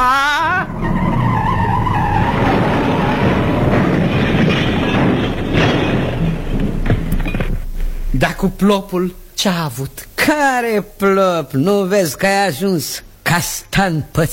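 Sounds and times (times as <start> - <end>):
brief high squeal: 0.0 - 6.4
truck with trailer engine rumbling: 0.0 - 9.4
truck road noise: 0.6 - 9.4
speech: 8.4 - 14.3.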